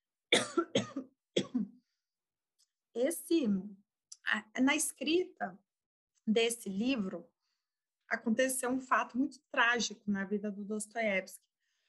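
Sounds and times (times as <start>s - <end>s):
raspy wheezing coughing: 0.3s - 1.8s
speech: 3.0s - 5.6s, 6.3s - 7.3s, 8.1s - 11.5s.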